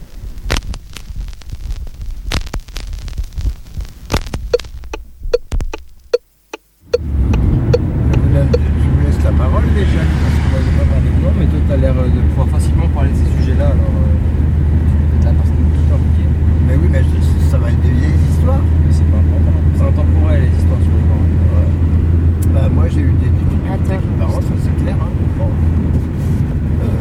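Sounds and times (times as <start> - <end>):
car engine rumble heard from inside: 0.0 - 27.0
road noise: 4.2 - 27.0
voices: 8.1 - 14.3, 15.0 - 25.7, 26.8 - 27.0.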